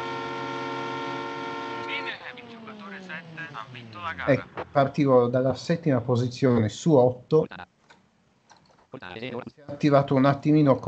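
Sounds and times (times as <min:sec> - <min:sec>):
car horn held down in racing game: 0:00.0 - 0:03.8
engine-like racing game noise: 0:00.0 - 0:07.6
speech: 0:03.6 - 0:07.7, 0:08.9 - 0:10.8.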